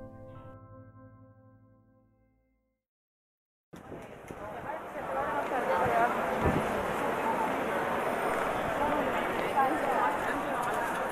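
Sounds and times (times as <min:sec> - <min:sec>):
dense murmur of many voices of morning street crowds: 0:03.8 - 0:11.1.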